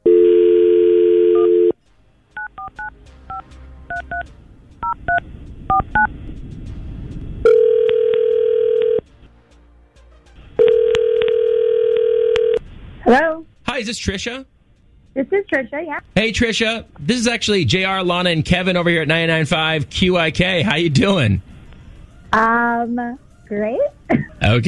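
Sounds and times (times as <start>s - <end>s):
phone dial tone humming: 0.0s - 1.8s, 7.4s - 9.0s, 10.6s - 12.6s
speech: 13.1s - 14.5s, 15.1s - 21.5s, 22.3s - 24.6s.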